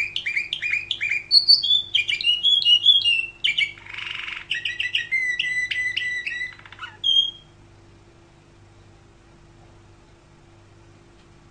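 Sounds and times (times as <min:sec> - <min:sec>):
canary singing trills and warbles: 0:00.0 - 0:07.6.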